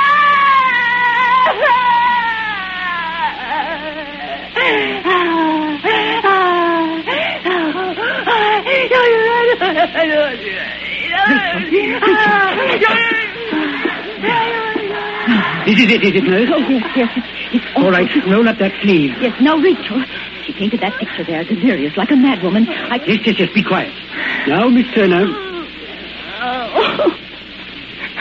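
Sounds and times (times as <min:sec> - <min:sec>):
woman shrieking and wailing in anguish: 0:00.0 - 0:15.9
laughter: 0:01.3 - 0:18.6, 0:22.4 - 0:25.7, 0:26.7 - 0:27.3, 0:28.0 - 0:28.1
speech: 0:15.8 - 0:25.5.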